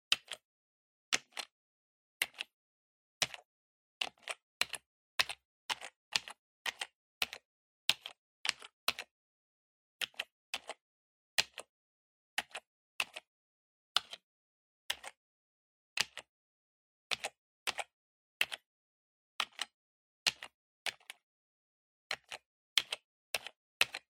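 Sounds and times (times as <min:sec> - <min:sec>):
gentle PC keyboard typing: 0:00.1 - 0:00.5, 0:01.2 - 0:01.6, 0:02.2 - 0:02.6, 0:03.2 - 0:09.1, 0:10.0 - 0:10.8, 0:11.4 - 0:11.7, 0:12.4 - 0:13.3, 0:14.9 - 0:15.2, 0:16.0 - 0:16.3, 0:17.1 - 0:18.7, 0:19.4 - 0:21.2, 0:22.1 - 0:24.1.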